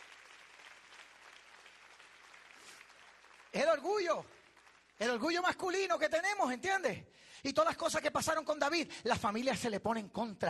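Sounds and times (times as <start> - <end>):
audience applauding: 0.0 - 5.5
speech: 3.6 - 4.4, 5.0 - 10.4.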